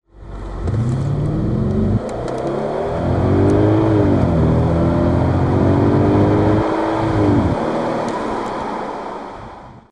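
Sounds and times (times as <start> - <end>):
Audi RS6 engine: 0.1 - 9.9.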